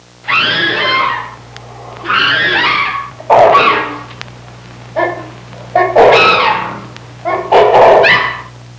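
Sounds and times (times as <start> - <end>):
angry chimpanzee: 0.3 - 1.4, 2.0 - 4.1, 5.0 - 8.5.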